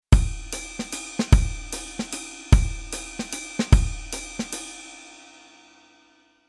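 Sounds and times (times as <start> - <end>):
snare drum: 0.1 - 4.8.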